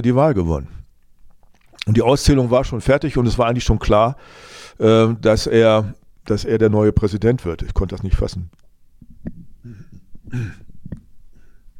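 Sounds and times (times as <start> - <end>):
speech: 0.0 - 0.8, 1.8 - 8.6, 9.2 - 10.6
person clearing throat: 9.6 - 10.7.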